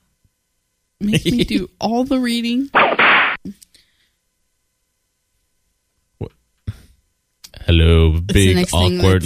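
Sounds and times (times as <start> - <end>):
speech: 1.0 - 2.8, 7.7 - 9.2
whip crack sound effect: 2.8 - 3.4.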